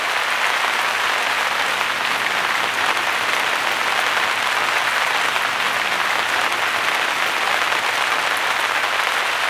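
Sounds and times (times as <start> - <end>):
rain on a forest canopy: 0.0 - 9.4.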